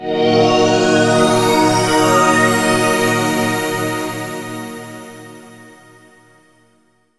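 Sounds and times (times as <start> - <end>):
space-themed music intro: 0.0 - 6.0.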